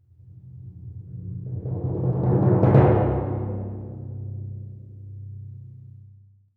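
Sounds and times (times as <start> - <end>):
timpani roll on C1: 0.4 - 5.0.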